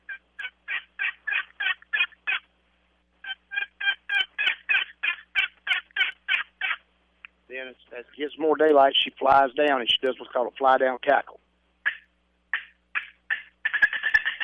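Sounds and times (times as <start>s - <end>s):
hen turkey yelping from a roost tree at daybreak: 0.0s - 2.5s, 3.2s - 6.8s, 11.8s - 14.4s
speech: 7.7s - 11.4s.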